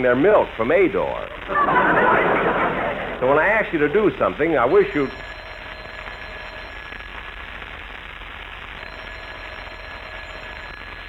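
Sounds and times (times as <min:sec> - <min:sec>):
speech: 0:00.0 - 0:02.4, 0:03.2 - 0:05.3
laughter: 0:01.5 - 0:03.5
telephone bell ringing: 0:04.6 - 0:07.0, 0:08.8 - 0:11.0.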